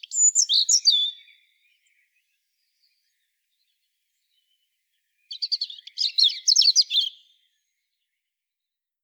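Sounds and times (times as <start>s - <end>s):
European robin whistling and twittering, Erithacus rubecula: 0.0s - 3.2s, 5.3s - 7.6s.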